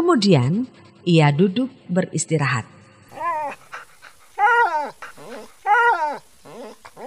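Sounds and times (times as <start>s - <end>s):
speech: 0.1s - 2.8s
dog yelping and whimpering in pain while beaten with wood: 3.1s - 7.0s.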